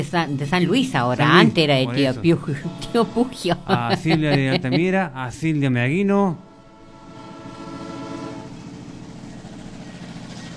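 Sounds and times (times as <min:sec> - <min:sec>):
speech: 0:00.0 - 0:06.5
laughter: 0:01.0 - 0:05.4
sustained horn-like train tone: 0:06.5 - 0:09.4
rumbling train sound effect: 0:06.5 - 0:10.5.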